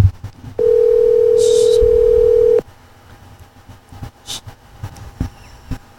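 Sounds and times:
telephone dial tone while placing a call: 0:00.6 - 0:02.6.

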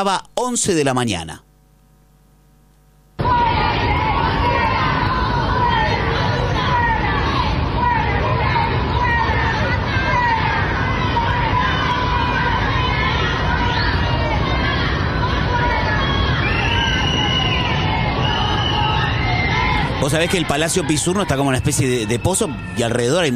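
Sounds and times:
speech: 0:00.0 - 0:01.5, 0:20.0 - 0:23.3
large crowd booing, shouting and swearing at the Palacio Pizurno: 0:03.2 - 0:23.3
people yelling from surrounding balconies: 0:03.2 - 0:23.3.

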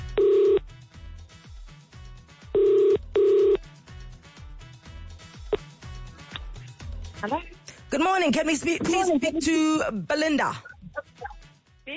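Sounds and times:
phone ringback tone on an outgoing call: 0:00.1 - 0:00.6, 0:02.6 - 0:03.6
rhythmic music bed: 0:03.8 - 0:11.7
speech: 0:07.2 - 0:10.7.

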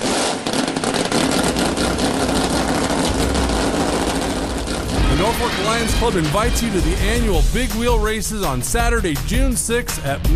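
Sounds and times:
several engines running together with deep low rumble: 0:01.0 - 0:07.6
speech: 0:05.4 - 0:10.3.

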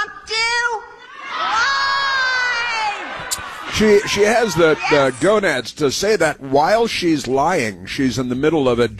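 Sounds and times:
crowd shouting a response in unison: 0:01.0 - 0:05.2
speech: 0:03.8 - 0:08.9.

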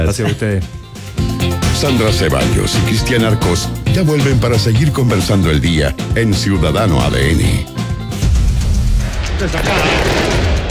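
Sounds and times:
speech: 0:00.0 - 0:07.8, 0:09.4 - 0:10.3
fireworks explosions: 0:09.1 - 0:10.7.

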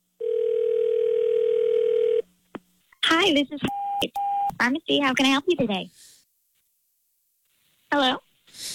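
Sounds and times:
steady telephone ringing tone: 0:00.2 - 0:02.2
speech: 0:03.2 - 0:06.1, 0:07.9 - 0:08.2.

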